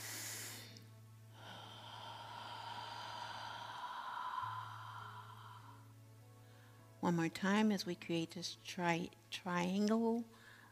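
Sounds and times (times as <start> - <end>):
slow deep breath in and out: 0.0 - 7.0, 10.3 - 10.7
speech: 7.0 - 10.4.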